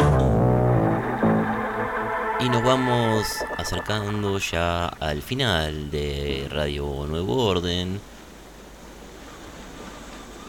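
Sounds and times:
ocean surf at night: 0.2s - 4.6s
speech: 2.4s - 8.1s.

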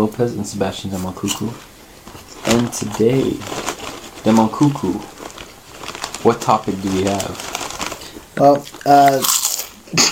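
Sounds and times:
speech: 0.0s - 1.7s, 2.5s - 5.1s, 6.2s - 7.5s, 8.4s - 9.3s, 9.9s - 10.1s
person munching salt and vinegar chips from a bag: 2.2s - 9.8s.

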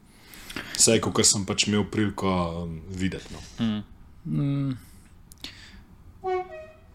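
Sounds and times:
speech: 0.8s - 4.9s
train horn blast: 6.2s - 6.9s.

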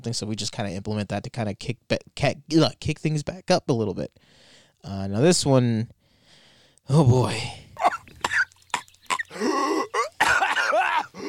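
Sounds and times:
speech: 0.0s - 6.0s, 6.9s - 7.6s
cartoon character gagging and gasping: 7.1s - 11.2s
cartoon character coughing: 7.8s - 8.5s, 9.1s - 11.2s.

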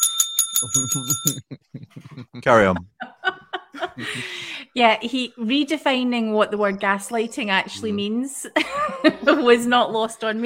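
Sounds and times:
small bell ringing: 0.0s - 1.4s
speech: 0.6s - 3.2s, 3.8s - 10.4s
low voice murmuring: 0.7s - 2.9s, 7.8s - 8.0s
laughter: 0.8s - 4.6s, 8.5s - 10.1s.

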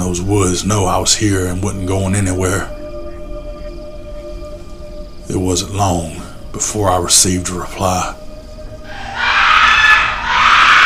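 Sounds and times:
speech: 0.0s - 2.8s, 5.5s - 8.2s
woman's shrill piercing scream: 8.9s - 10.8s.

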